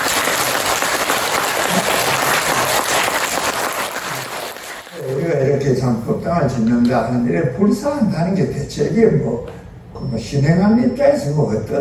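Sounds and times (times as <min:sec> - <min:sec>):
crowd applause: 0:00.0 - 0:05.2
speech: 0:05.8 - 0:11.7.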